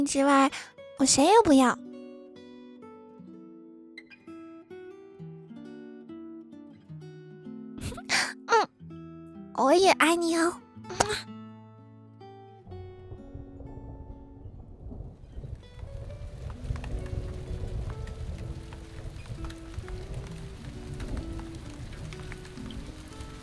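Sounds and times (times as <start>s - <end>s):
speech: 0.0s - 1.8s, 9.6s - 11.4s
steady rain falling: 15.2s - 23.4s.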